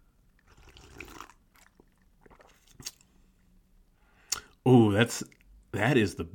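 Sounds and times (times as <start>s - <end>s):
person slurping a pale yellow drink topped with a lemon slice: 0.4s - 3.0s
soft wet mouth noises: 0.4s - 3.1s
speech: 4.7s - 6.3s.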